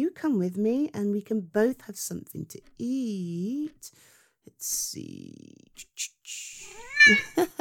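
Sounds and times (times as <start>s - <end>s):
speech: 0.2s - 7.5s
cat meowing with drawn-out rising meow: 6.6s - 7.4s.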